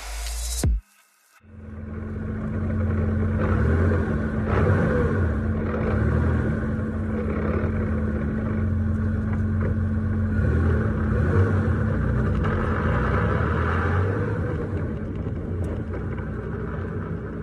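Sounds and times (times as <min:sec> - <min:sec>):
constant low hum: 0:01.5 - 0:13.3, 0:14.2 - 0:17.4
car clutch grinding when pulling away, single-mass flywheel and heavy clutch: 0:02.0 - 0:13.8, 0:14.4 - 0:17.4.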